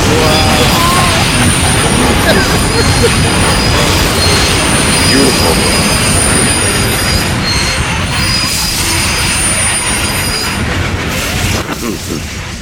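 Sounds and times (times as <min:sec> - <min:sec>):
laughter: 0:00.0 - 0:04.2, 0:11.5 - 0:12.4
high-pitched subway train wheel squeals: 0:00.0 - 0:10.7
subway train rushing past: 0:00.0 - 0:12.6.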